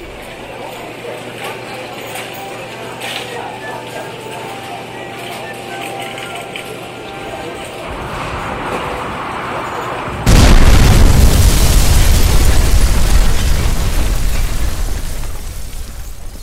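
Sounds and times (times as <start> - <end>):
debris-like crackle: 6.2 - 16.4
explosion with a heavy low boom: 7.9 - 16.4.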